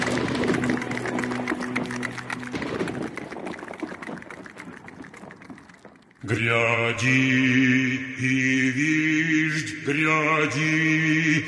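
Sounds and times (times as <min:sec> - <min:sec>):
horse hoofbeats galloping: 0:00.0 - 0:06.6
speech: 0:06.3 - 0:11.4.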